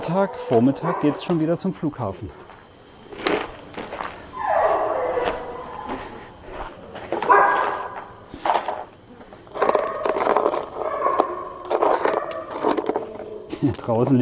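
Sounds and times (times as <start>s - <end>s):
dogs barking and yipping excitedly: 0.0s - 1.4s, 4.4s - 6.2s, 7.2s - 8.1s, 9.6s - 13.5s
speech: 0.1s - 2.5s, 13.9s - 14.2s.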